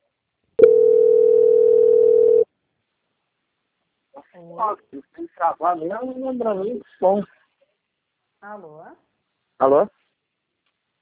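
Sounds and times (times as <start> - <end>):
steady single-pitched telephone line tone while a call is transferred: 0.6 - 2.5
speech: 4.4 - 7.4, 8.4 - 10.0.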